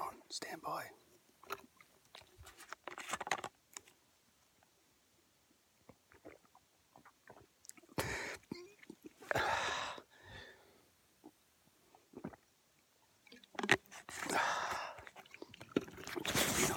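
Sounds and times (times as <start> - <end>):
speech: 0.3 - 1.7
wet slurping sips and gulps of a drink: 5.9 - 10.1, 11.2 - 12.5, 13.2 - 16.7.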